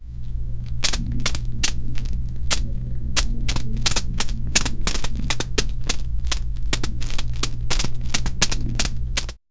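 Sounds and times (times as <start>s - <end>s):
footsteps walking on the ground: 0.0s - 9.5s.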